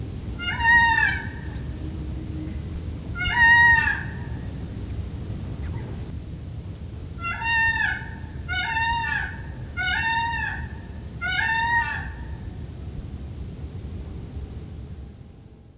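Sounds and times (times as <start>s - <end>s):
Indian peafowl trumpet-like loud call while flying between trees: 0.0s - 6.1s, 7.1s - 12.5s.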